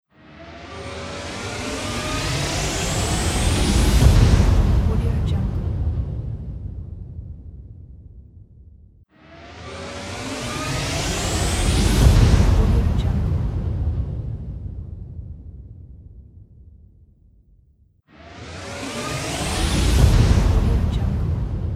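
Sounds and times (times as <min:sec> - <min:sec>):
riser: 0:00.2 - 0:05.6, 0:09.1 - 0:13.8, 0:18.1 - 0:21.7
whoosh: 0:00.2 - 0:16.8, 0:18.1 - 0:21.7.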